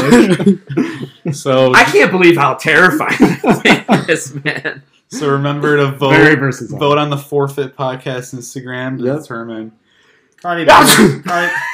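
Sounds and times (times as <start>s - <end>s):
laughter: 0.0s - 1.4s, 2.8s - 5.9s, 11.3s - 11.7s
speech: 0.1s - 9.8s, 10.4s - 11.7s
person sneezing: 10.7s - 11.4s.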